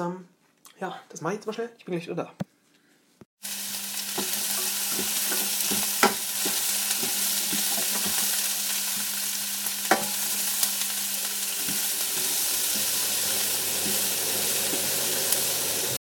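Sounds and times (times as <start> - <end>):
speech: 0.0 - 2.5
bell pepper strips frying in olive oil: 3.4 - 16.0.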